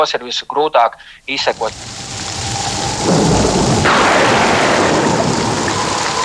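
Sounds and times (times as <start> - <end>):
speech: 0.0 - 2.0
steady rain hissing in a thunderstorm: 1.0 - 6.2
deep thunder rumble: 1.5 - 6.2.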